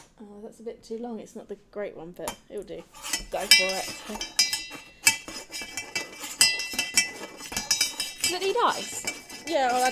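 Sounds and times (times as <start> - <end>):
speech: 0.3 - 4.8, 8.3 - 9.9
spoon stirring cocktail ingredients in a glass: 3.5 - 5.2, 6.3 - 9.9.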